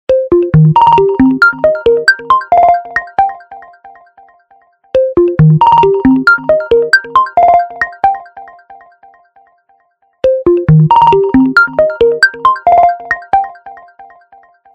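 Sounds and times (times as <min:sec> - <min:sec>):
rhythmic notes ringtone from a phone: 0:00.1 - 0:03.6, 0:05.0 - 0:08.4, 0:10.2 - 0:13.8.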